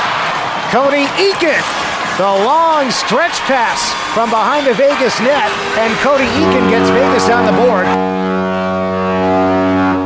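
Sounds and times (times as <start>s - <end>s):
speech: 0.7s - 8.2s
deep loud foghorn blast: 3.9s - 10.0s.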